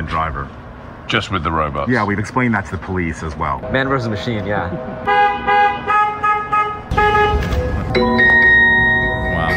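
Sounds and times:
speech: 0.1 - 5.6, 6.9 - 8.4
self-driving robotaxi horn honking: 4.8 - 9.4.

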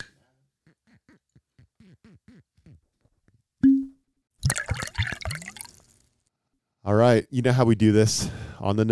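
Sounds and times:
bourbon glugging and splashing into a Glencairn glass: 3.6 - 5.9
cork pulling free from a bottle of bourbon: 3.6 - 5.9
speech: 6.9 - 8.9.

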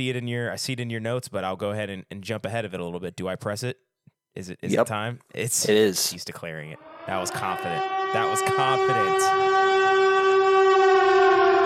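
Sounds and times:
speech: 0.0 - 9.7
siren blaring on a steady horn-like pitch: 6.7 - 11.6.

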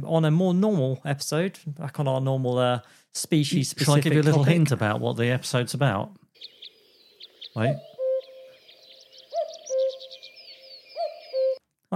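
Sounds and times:
speech: 0.1 - 6.5, 7.6 - 7.9
small birds chirping: 6.2 - 11.6
common cuckoo calling: 6.4 - 11.6.

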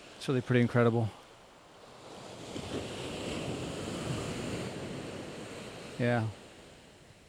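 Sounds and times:
ocean surf breaking on a beach: 0.0 - 7.2
speech: 0.2 - 1.2, 6.0 - 6.4
wind buffeting the microphone: 1.8 - 7.2.

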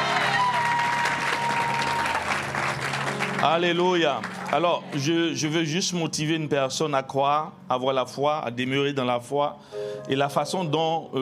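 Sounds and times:
church congregation applauding: 0.0 - 5.5
speech: 3.4 - 11.2.

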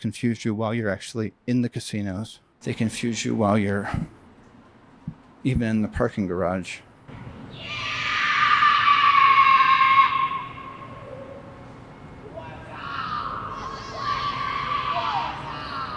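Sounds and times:
speech: 0.0 - 4.2, 5.4 - 6.9
several people screaming in a casino parking garage: 7.4 - 15.9.

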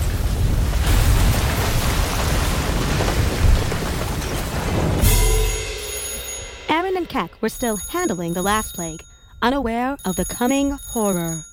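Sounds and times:
storm wind roaring: 0.0 - 5.3
storm rain: 0.0 - 5.4
deep rumbling thunder booms: 0.0 - 7.4
speech: 7.1 - 11.5.

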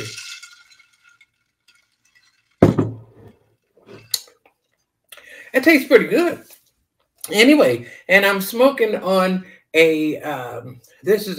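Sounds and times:
drink stirred in a glass mason jar: 0.0 - 2.6
speech: 5.5 - 6.6, 7.3 - 11.3.

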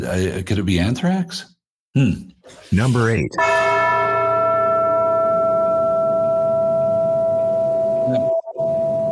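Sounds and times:
speech: 0.0 - 3.7
single heavy bell tolling in a hard rock or metal song: 3.4 - 8.0.

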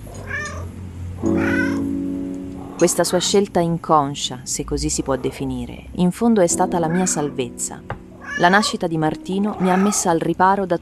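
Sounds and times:
domestic cat meowing while rubbing against legs: 0.1 - 1.9, 6.9 - 7.4, 8.1 - 8.8, 9.5 - 10.1
speech: 1.2 - 1.5, 2.8 - 10.8.

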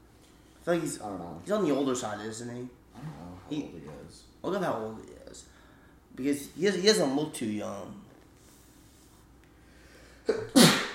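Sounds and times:
speech: 0.7 - 5.5, 6.2 - 8.0, 10.3 - 10.8
sneeze: 10.3 - 10.9.

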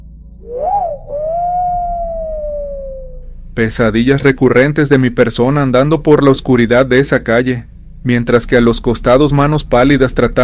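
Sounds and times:
eerie whistle at night: 0.0 - 3.4
low dark rumble: 0.0 - 10.4
speech: 0.4 - 0.7, 3.6 - 10.4.

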